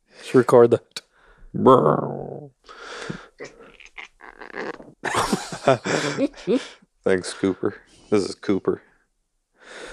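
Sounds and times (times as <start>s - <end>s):
laughter: 0.3s - 0.8s, 5.0s - 8.8s
speech: 0.3s - 0.9s, 1.5s - 3.5s, 5.6s - 8.9s
cat growling: 1.6s - 4.8s, 5.6s - 8.6s.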